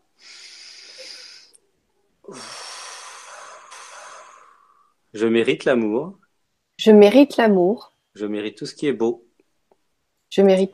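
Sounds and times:
person taking long airy breaths, inhale and rushing exhale: 0.0s - 5.1s
speech: 5.2s - 6.2s, 6.8s - 9.2s, 10.3s - 10.7s.

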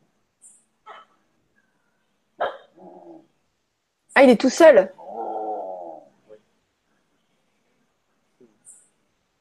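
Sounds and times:
dog barking at an ashram in India: 0.8s - 1.2s, 2.4s - 2.8s
speech: 4.2s - 5.0s.

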